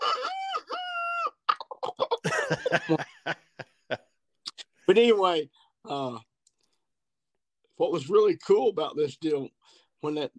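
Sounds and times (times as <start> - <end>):
person's voice imitating a rooster crowing: 0.0 - 2.1
laughter: 2.2 - 4.0
speech: 2.5 - 3.4, 4.9 - 6.3, 7.8 - 10.3.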